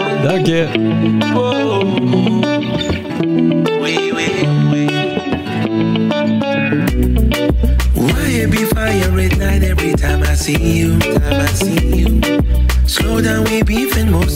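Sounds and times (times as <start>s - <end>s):
effects-heavy slightly distorted guitar in a live band: 0.0s - 14.3s
speech: 0.2s - 5.1s, 8.4s - 14.3s
deep bass line in a live band: 6.9s - 14.3s
steady drums in a live band: 6.9s - 14.3s.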